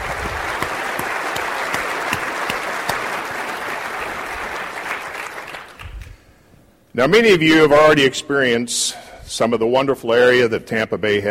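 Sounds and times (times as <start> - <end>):
large audience applauding at a conference opening event in Tampa Bay: 0.0 - 6.2
speech: 7.0 - 11.2.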